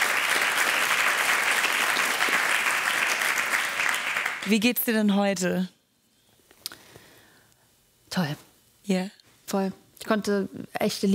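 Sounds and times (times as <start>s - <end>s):
crowd applauding: 0.0s - 4.6s
speech: 4.4s - 5.8s, 8.2s - 11.1s.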